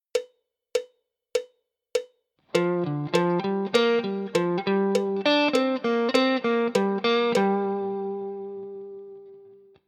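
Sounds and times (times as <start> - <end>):
G minor pentatonic guitar lick: 2.5 - 9.8.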